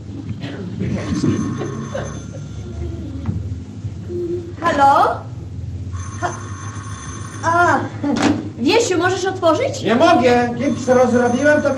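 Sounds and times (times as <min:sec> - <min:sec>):
low hum: 0:00.0 - 0:11.7
speech: 0:01.2 - 0:02.2, 0:04.8 - 0:05.3, 0:08.1 - 0:11.7
alarm clock bell ringing: 0:01.3 - 0:02.6, 0:06.0 - 0:07.5, 0:10.6 - 0:11.7.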